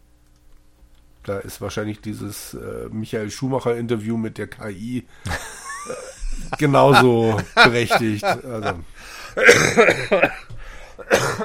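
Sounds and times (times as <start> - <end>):
speech: 1.3 - 10.4
laughter: 5.3 - 10.5
person coughing harshly: 9.4 - 11.4.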